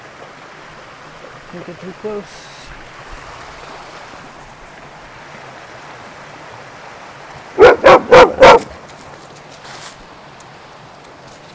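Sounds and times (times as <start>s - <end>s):
speech: 1.5s - 2.6s
dog barking near a stream: 7.6s - 8.8s.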